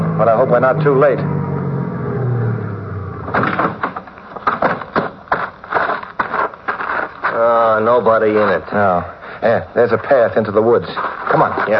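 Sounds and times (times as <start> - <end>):
car engine rumbling low: 0.0 - 7.1
speech: 0.2 - 1.3, 7.8 - 11.7
car door opening and shutting: 3.3 - 5.2.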